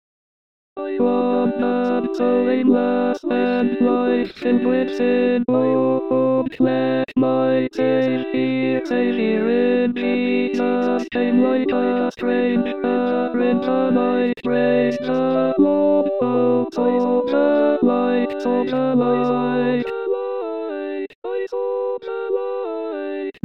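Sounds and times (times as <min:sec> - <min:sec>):
tenors singing: 0:00.8 - 0:23.3.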